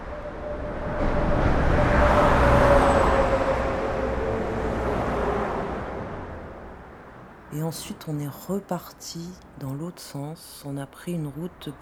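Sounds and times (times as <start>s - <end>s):
car driving on a road: 0.0s - 7.5s
speech: 7.6s - 11.8s.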